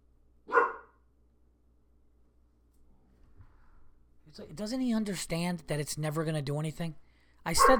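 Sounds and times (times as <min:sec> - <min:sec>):
low hum: 0:00.0 - 0:07.7
dog barking: 0:00.5 - 0:01.0, 0:07.5 - 0:07.7
speech: 0:04.4 - 0:07.7.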